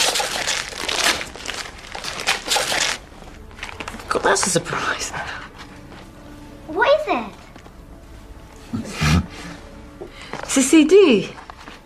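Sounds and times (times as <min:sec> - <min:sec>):
wrapping paper crinkling and tearing as a present is ripped open: 0:00.0 - 0:04.2
speech: 0:04.2 - 0:05.4, 0:07.1 - 0:07.3, 0:10.6 - 0:11.4.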